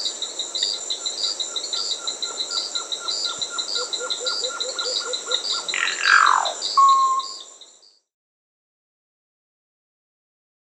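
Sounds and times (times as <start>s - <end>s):
insects chirping in the Peruvian Amazon: 0.0s - 8.1s
Cacicus solitarius calls in the Peruvian Amazon: 3.3s - 7.6s.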